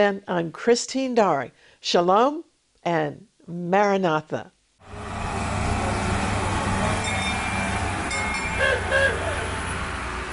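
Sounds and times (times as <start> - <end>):
speech: 0.0 - 5.0
small tourist train engine drone and rattling carriages in old city: 4.8 - 10.3
high squeaks or clinks: 7.0 - 8.9.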